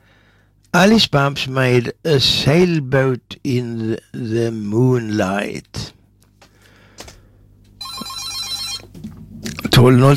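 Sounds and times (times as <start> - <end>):
speech: 0.7 - 6.0, 9.8 - 10.1
telephone bell ringing: 7.8 - 8.9.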